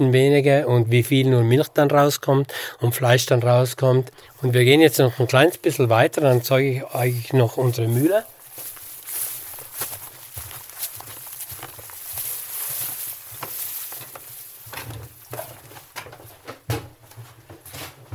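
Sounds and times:
speech: 0.0s - 8.3s
faint noise: 0.0s - 18.1s
footsteps on wooden floorboards of a farm barn: 6.4s - 18.1s.

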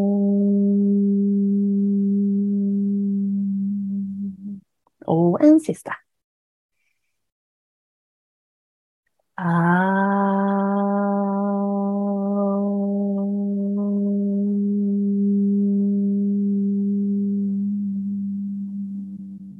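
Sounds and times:
single voice chanting Om during a breathing exercise: 0.0s - 4.6s, 9.4s - 19.5s
speech: 5.1s - 6.0s, 9.4s - 9.9s.

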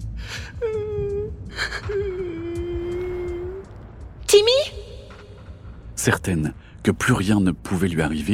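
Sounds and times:
voice imitating someone sobbing: 0.2s - 3.7s
speech: 4.4s - 4.8s, 6.0s - 8.3s.

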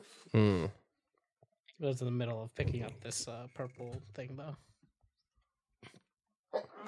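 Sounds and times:
quiet breathy sound: 0.0s - 0.7s
speech: 0.3s - 0.8s, 1.8s - 4.7s
sharp loud sneeze: 0.4s - 0.7s.

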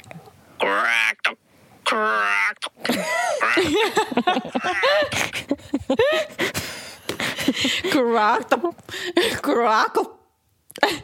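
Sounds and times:
woman imitating raven calls: 0.6s - 2.7s
laughter: 2.9s - 6.4s
woman talking: 7.8s - 10.2s.

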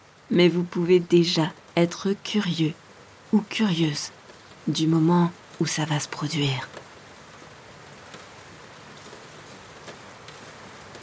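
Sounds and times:
steady rain falling: 0.0s - 11.0s
speech: 0.3s - 6.8s.

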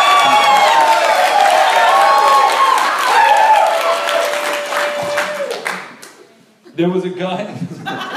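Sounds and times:
audience applause: 0.0s - 6.2s
speech: 6.8s - 7.8s
laughter: 7.5s - 8.1s.

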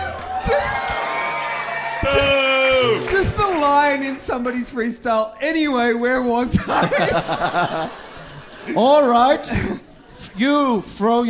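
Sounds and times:
crowd cheering and whooping: 0.0s - 4.0s
speech: 2.0s - 2.4s, 3.6s - 8.0s, 8.7s - 9.8s, 10.4s - 11.2s
laughter: 6.5s - 11.0s.

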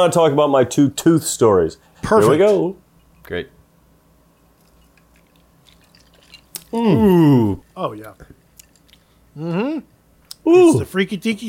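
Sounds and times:
speech: 0.0s - 3.6s, 6.7s - 8.4s, 9.4s - 11.4s
person sipping a rum cocktail with faint wet slurps: 4.4s - 10.4s.

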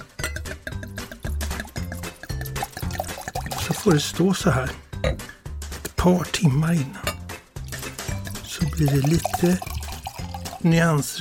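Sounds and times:
glass clinking: 0.0s - 3.9s, 7.0s - 10.6s
wine glugging and splashing into glasses: 1.0s - 4.2s, 7.6s - 11.1s
speech: 3.7s - 5.3s, 6.0s - 7.1s, 8.8s - 9.7s, 10.6s - 11.1s.

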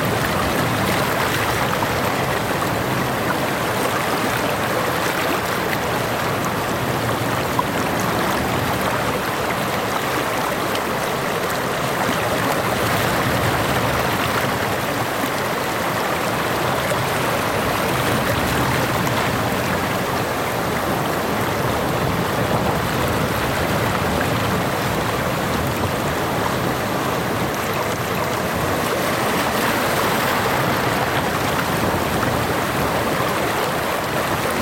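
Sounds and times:
gentle waves washing against the shore at sunset: 0.0s - 34.6s.

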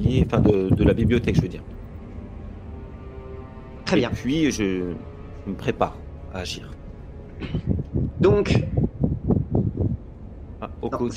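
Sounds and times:
low rumbling wind gusts buffeting the microphone: 0.0s - 1.6s, 7.4s - 11.1s
speech: 0.1s - 1.8s, 3.9s - 6.8s, 7.4s - 8.7s, 10.8s - 11.1s.

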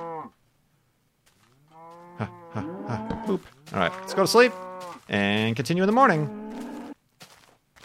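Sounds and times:
cow mooing: 1.7s - 5.0s, 6.2s - 7.0s
speech: 2.2s - 6.4s.

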